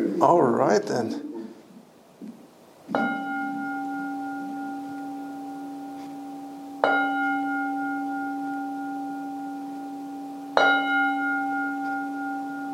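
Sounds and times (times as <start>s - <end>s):
speech: 0.2s - 1.3s
deep bell ringing at sundown: 2.9s - 12.7s.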